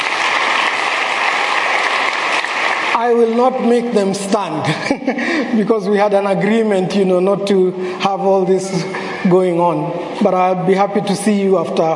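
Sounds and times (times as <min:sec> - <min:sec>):
crowd at a service applauding: 0:00.0 - 0:04.0
speech: 0:03.0 - 0:11.9
laughter: 0:04.6 - 0:05.8.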